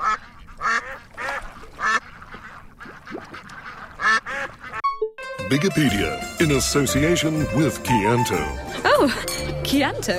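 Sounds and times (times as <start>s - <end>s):
ducks quacking: 0.0s - 4.8s
speech: 5.5s - 10.1s.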